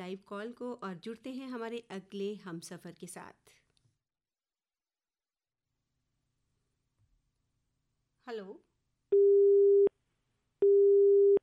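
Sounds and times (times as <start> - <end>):
speech: 0.0 - 3.6, 8.2 - 9.5
telephone busy tone after call drops: 10.6 - 11.4.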